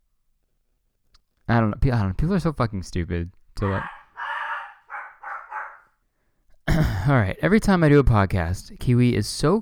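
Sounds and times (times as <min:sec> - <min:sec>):
speech: 0:01.5 - 0:04.0, 0:06.8 - 0:09.6
dog barking: 0:03.6 - 0:05.9.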